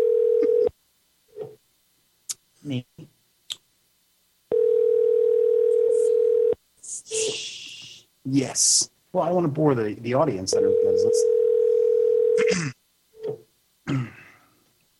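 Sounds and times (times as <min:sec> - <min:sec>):
telephone ringback tone during outgoing call: 0:00.0 - 0:00.7, 0:04.5 - 0:06.6, 0:10.6 - 0:12.5
speech: 0:02.7 - 0:03.1, 0:08.3 - 0:11.3, 0:12.5 - 0:12.8.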